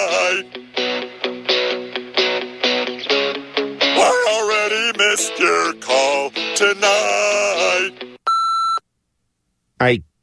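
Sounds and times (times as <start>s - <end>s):
music with sung vocals: 0.0s - 8.2s
steady electronic answering-machine beep: 8.3s - 8.8s.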